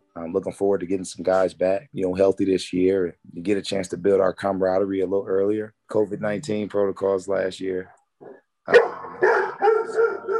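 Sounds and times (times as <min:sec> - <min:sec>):
speech: 0:00.2 - 0:08.9
dog barking: 0:08.2 - 0:10.3.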